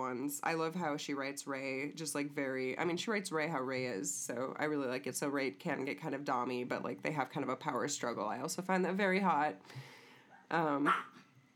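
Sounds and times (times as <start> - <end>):
speech: 0.1 - 11.2
dog barking: 10.8 - 11.2.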